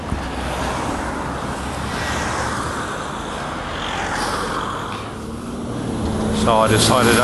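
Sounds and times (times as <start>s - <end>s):
local bus engine drone coming to a halt: 0.0s - 7.2s
rushing road noise: 0.0s - 7.2s
speech: 6.5s - 7.2s.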